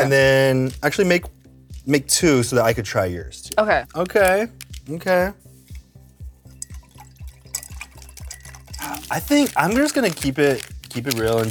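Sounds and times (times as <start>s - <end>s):
speech: 0.0s - 5.4s, 9.1s - 11.4s
water pouring into a cup: 6.5s - 11.4s.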